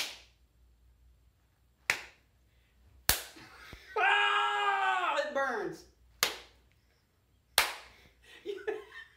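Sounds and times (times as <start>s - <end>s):
hand slapping another person's outstretched hand in a game: 0.0s - 0.4s, 1.8s - 2.2s, 3.0s - 3.8s, 6.2s - 6.6s, 7.5s - 8.1s
person crying out: 3.9s - 5.3s
speech: 5.4s - 6.0s.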